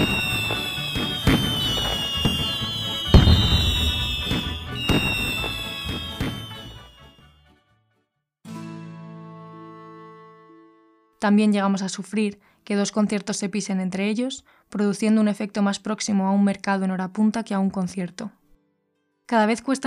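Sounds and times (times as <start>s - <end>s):
fireworks exploding in a dense crackling barrage: 0.0s - 7.2s
speech: 11.2s - 18.4s, 19.3s - 19.8s.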